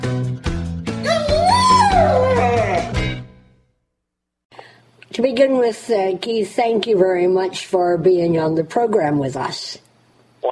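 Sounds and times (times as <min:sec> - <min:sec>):
dog whimpering: 0:01.0 - 0:03.0
speech: 0:05.2 - 0:09.8.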